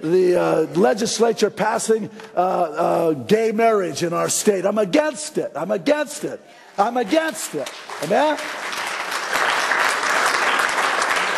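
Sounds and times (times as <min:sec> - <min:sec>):
speech: 0:00.0 - 0:08.8
large congregation applauding: 0:07.6 - 0:11.3.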